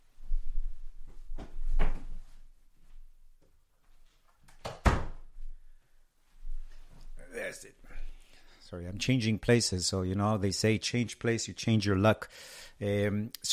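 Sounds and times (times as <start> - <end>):
door thunking shut: 4.6 - 5.2
speech: 8.7 - 13.5.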